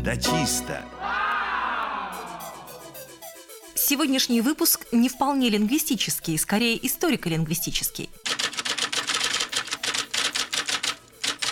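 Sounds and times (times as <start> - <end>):
speech: 0.0 - 1.1, 3.9 - 8.2
typewriter keys clacking: 8.2 - 11.4.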